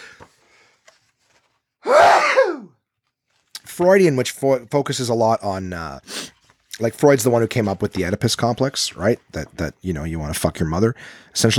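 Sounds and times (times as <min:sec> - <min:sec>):
person sneezing: 0:01.8 - 0:02.7
speech: 0:03.8 - 0:06.2, 0:06.8 - 0:11.5.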